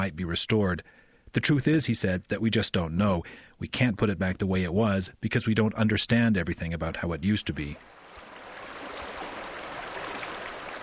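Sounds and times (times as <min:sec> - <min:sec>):
speech: 0:00.0 - 0:08.0
snow-fed creek flowing: 0:07.8 - 0:10.8.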